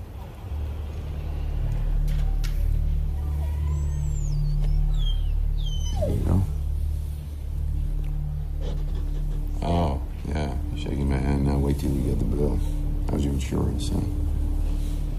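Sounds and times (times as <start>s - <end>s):
steady low engine rumble: 0.0s - 15.1s
dog whimpering and yipping: 3.5s - 6.7s.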